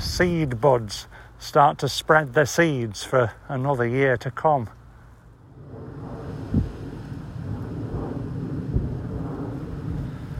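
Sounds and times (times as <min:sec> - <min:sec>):
wind buffeting the microphone outdoors: 0:00.0 - 0:01.0, 0:05.3 - 0:10.3
speech: 0:00.2 - 0:04.8
plane flying overhead: 0:04.7 - 0:10.3.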